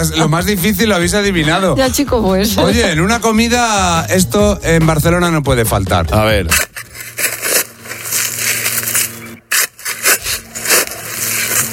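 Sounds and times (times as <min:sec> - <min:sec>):
speech: 0:00.0 - 0:06.7
shovel digging: 0:06.5 - 0:11.7.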